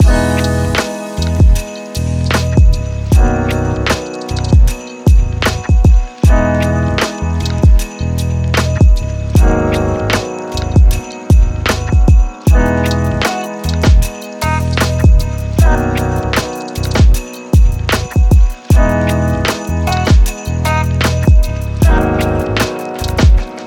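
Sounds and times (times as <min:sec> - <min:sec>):
cozy Christmas lo-fi music loop: 0:00.0 - 0:23.6.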